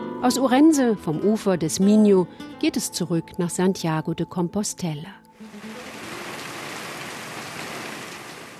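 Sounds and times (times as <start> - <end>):
speech: 0.2 - 5.3
steady rain falling: 5.4 - 8.5.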